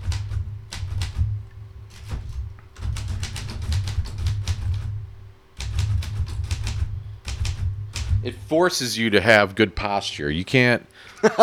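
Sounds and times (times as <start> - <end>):
typing on a 1945 Royal manual typewriter: 0.0 - 8.6
low steady hum: 0.0 - 11.4
speech: 8.2 - 11.4.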